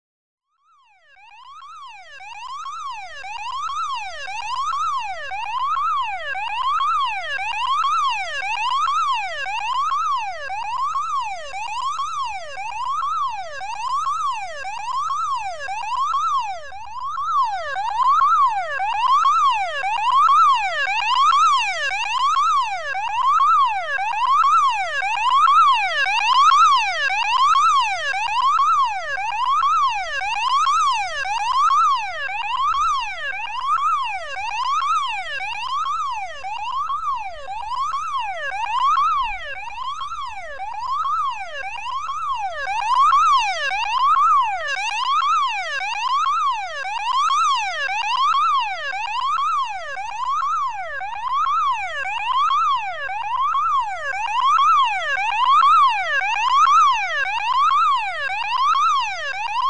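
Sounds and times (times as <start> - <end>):
urgent electronic alarm: 0.7 - 59.6.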